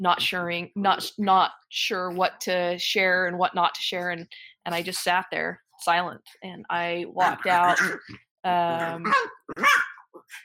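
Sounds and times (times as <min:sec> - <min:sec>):
speech: 0:00.0 - 0:10.4
dog barking: 0:09.0 - 0:10.0.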